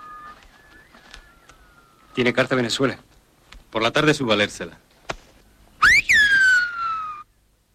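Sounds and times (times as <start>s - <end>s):
loud clear whistled call in the silbo whistled language: 0.0s - 2.6s, 5.8s - 7.4s
speech: 2.2s - 3.1s, 3.7s - 4.8s.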